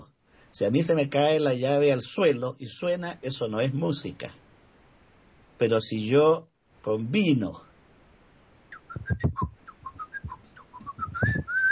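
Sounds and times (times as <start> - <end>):
speech: 0.5 - 4.4, 5.6 - 7.6, 9.0 - 9.5
person whistling a melody: 8.8 - 11.7
soft low thumps: 8.8 - 11.7.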